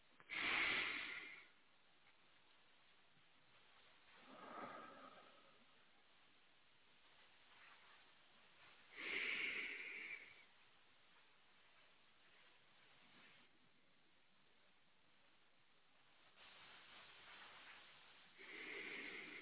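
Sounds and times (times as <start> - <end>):
slow breaths during a church service: 0.2 - 1.8, 3.5 - 6.0, 7.0 - 13.6, 16.2 - 19.4.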